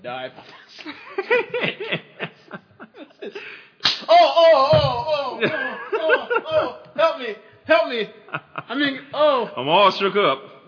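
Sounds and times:
speech: 0:00.0 - 0:02.2, 0:04.6 - 0:05.7, 0:08.0 - 0:10.6
laughter: 0:00.7 - 0:03.6, 0:05.0 - 0:07.2, 0:08.0 - 0:09.2
sharp loud slap to the face: 0:03.8 - 0:04.2
excited voice: 0:04.0 - 0:09.6.

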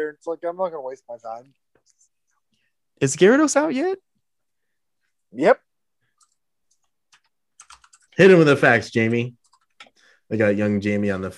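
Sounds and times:
speech: 0:00.0 - 0:02.0, 0:03.0 - 0:04.1, 0:05.3 - 0:05.7, 0:08.2 - 0:09.4, 0:10.3 - 0:11.3
typing on a mechanical keyboard: 0:07.1 - 0:08.2.

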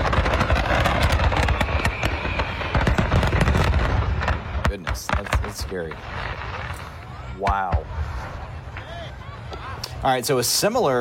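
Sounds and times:
barrage of fireworks exploding all at once: 0:00.0 - 0:10.8
speech: 0:05.8 - 0:06.2, 0:07.4 - 0:07.9, 0:10.0 - 0:10.9.

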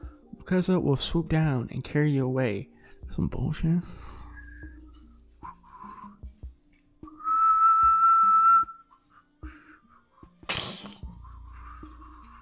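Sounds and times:
speech: 0:00.5 - 0:04.2
person whistling, imitating a creature's call: 0:04.1 - 0:06.2, 0:07.0 - 0:09.0.

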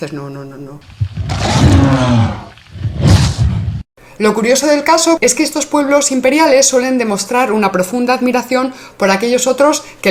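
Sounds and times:
speech: 0:00.0 - 0:02.8, 0:04.2 - 0:10.0
bear roaring: 0:00.9 - 0:03.8.

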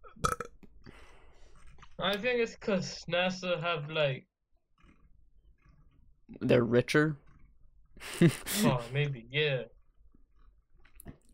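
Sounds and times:
gurgly burp: 0:00.0 - 0:00.5
speech: 0:02.0 - 0:04.3, 0:06.3 - 0:07.2, 0:08.0 - 0:09.7
laughter: 0:08.0 - 0:09.6.

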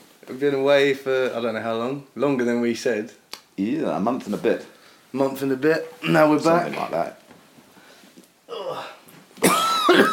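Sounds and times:
speech: 0:00.2 - 0:07.2
breathy noise: 0:07.8 - 0:09.2
massive harsh cough: 0:09.4 - 0:10.1.

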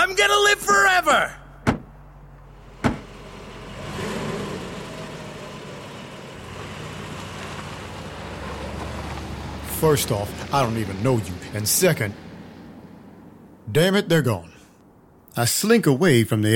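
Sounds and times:
speech: 0:00.1 - 0:01.4, 0:09.8 - 0:12.2, 0:13.7 - 0:14.5, 0:15.4 - 0:16.5
car door shutting: 0:01.6 - 0:02.0, 0:02.7 - 0:03.2
car engine starting and driving away: 0:01.9 - 0:13.7.

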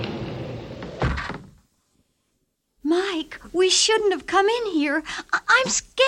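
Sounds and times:
deep thud of hidden wall panel shutting: 0:00.8 - 0:01.6
speech: 0:03.2 - 0:06.0.

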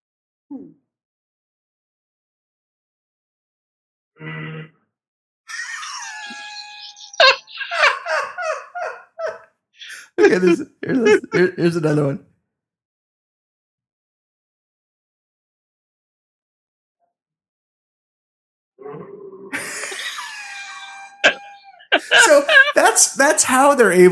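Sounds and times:
laughter: 0:05.5 - 0:12.0, 0:19.6 - 0:24.1
speech: 0:10.2 - 0:12.3, 0:22.3 - 0:24.1
person coughing: 0:21.2 - 0:22.8.

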